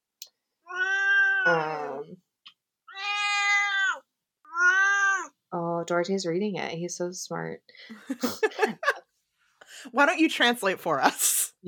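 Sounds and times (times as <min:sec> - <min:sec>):
male cat meowing: 0:00.6 - 0:02.0, 0:02.9 - 0:05.4
speech: 0:05.9 - 0:08.8, 0:09.8 - 0:11.6.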